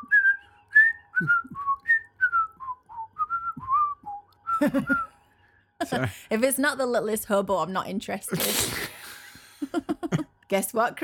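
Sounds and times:
whistled TV theme song melody: 0.0s - 5.2s
speech: 1.2s - 1.5s, 4.6s - 5.1s, 5.8s - 9.0s, 10.5s - 11.0s.

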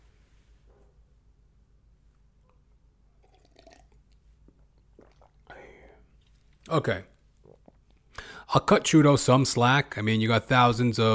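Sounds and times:
person sipping water: 2.4s - 8.3s
speech: 6.7s - 7.1s, 8.5s - 11.1s.

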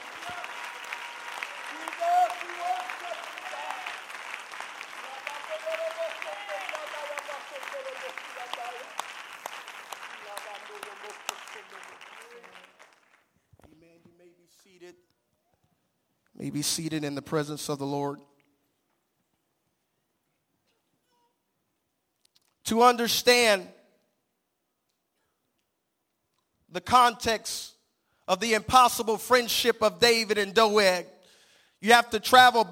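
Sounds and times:
large crowd clapping hands in applause: 0.0s - 13.4s
speech: 16.5s - 18.3s, 22.7s - 23.8s, 26.9s - 31.1s, 31.8s - 32.7s.

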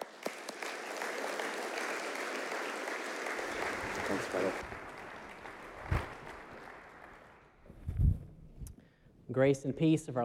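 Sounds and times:
church audience applause welcoming a guest preacher: 0.0s - 7.6s
speech: 4.1s - 4.8s, 9.3s - 10.2s.

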